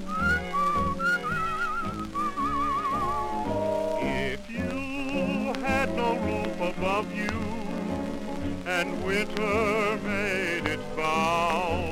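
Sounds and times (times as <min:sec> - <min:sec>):
cheerful whistled melody with vibrato: 0:00.0 - 0:06.4
steady musical accompaniment: 0:00.0 - 0:11.9.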